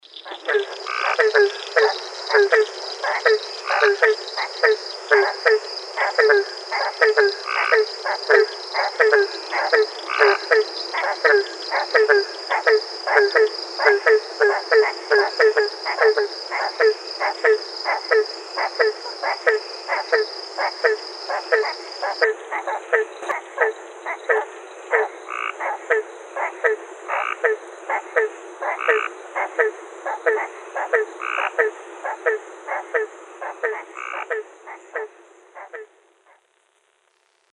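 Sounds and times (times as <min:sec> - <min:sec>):
barking tree frog: 0:00.0 - 0:36.5.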